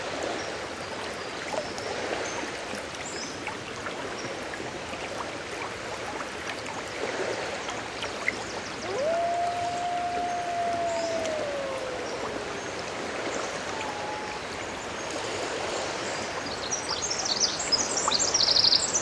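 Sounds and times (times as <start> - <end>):
rushing stream: 0.0 - 19.0
wolf howl in Glacier Bay: 8.8 - 14.7.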